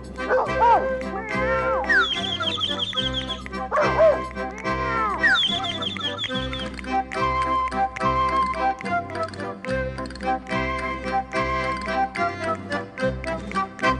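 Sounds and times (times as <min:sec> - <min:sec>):
upbeat children's music with a bouncy bass line: 0:00.0 - 0:13.9
dog barking: 0:00.3 - 0:00.8, 0:03.7 - 0:04.2.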